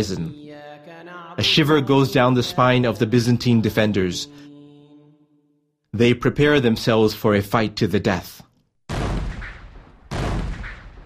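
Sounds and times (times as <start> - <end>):
speech: 0.0 - 4.5, 6.0 - 8.4
Ottoman artillery and giant bombard cannon blasts firing on city land walls: 8.9 - 11.0.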